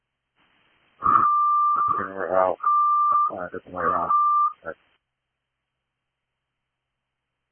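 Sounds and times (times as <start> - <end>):
speech bursts over dispatch radio: 1.0 - 4.8
steady high-pitched electronic beep through a tinny radio channel: 1.0 - 4.8
speech: 2.0 - 2.6, 3.3 - 4.9.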